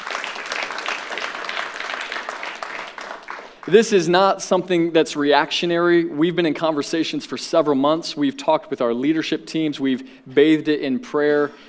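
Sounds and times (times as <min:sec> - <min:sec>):
church audience applauding: 0:00.0 - 0:03.8
speech: 0:03.6 - 0:11.6.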